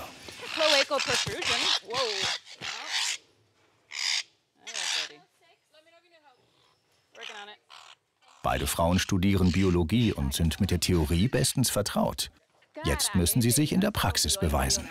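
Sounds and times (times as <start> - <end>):
agitated parrots screeching and squawking while chased between cages: 0.4 - 3.3, 3.9 - 5.2, 6.5 - 11.6
speech: 0.9 - 2.4, 8.5 - 14.8.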